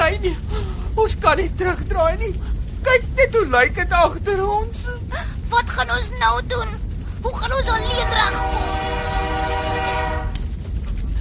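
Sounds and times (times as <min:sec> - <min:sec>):
heavy steady rumble of a passing train: 0:00.0 - 0:11.1
speech: 0:00.2 - 0:09.6
train horn blaring a sustained chord: 0:07.6 - 0:10.4.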